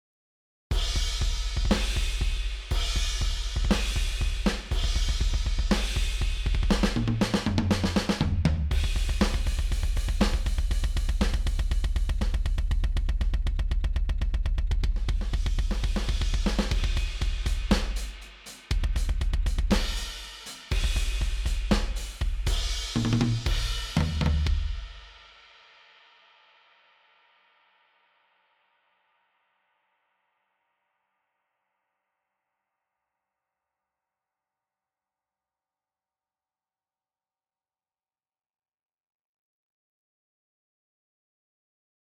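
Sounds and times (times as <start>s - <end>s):
kick drum with 7 kHz added: 0.7s - 18.1s, 18.7s - 24.9s.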